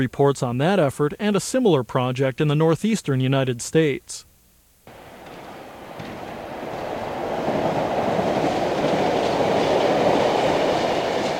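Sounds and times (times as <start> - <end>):
speech: 0.0 - 4.3
train rumbling along the rails: 4.9 - 11.3.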